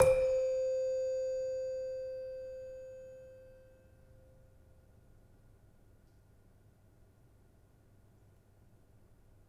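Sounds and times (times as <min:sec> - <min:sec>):
demung gamelan metallophone: 0:00.0 - 0:03.2.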